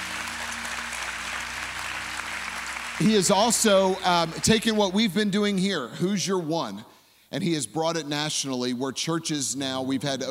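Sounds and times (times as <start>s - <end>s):
audience at a church convention applauding: 0.0s - 4.8s
speech: 3.0s - 10.2s.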